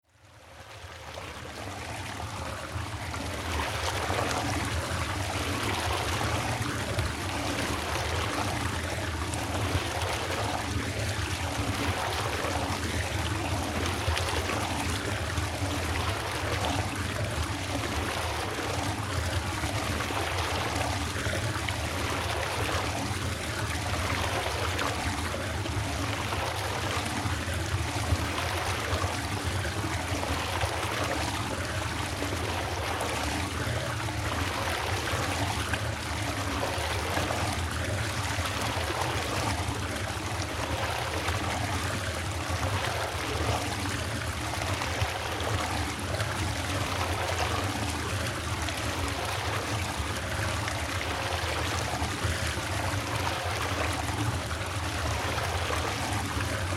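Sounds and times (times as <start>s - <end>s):
pond water: 0.0s - 56.7s.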